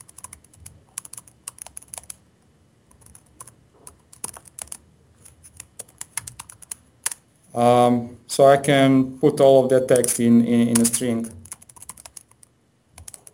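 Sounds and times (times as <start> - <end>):
computer keyboard typing while writing code: 0.0 - 2.2, 2.9 - 7.2, 9.9 - 13.3
speech: 7.6 - 11.4.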